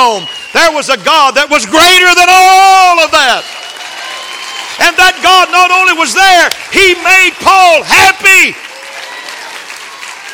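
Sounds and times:
speech: 0.0 - 3.6, 4.8 - 8.6
audience clapping hands in dense applause: 2.2 - 10.3.

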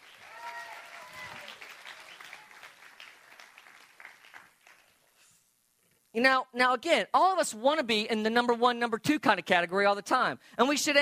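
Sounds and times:
audience applause: 0.0 - 5.0
speech: 6.2 - 11.0.

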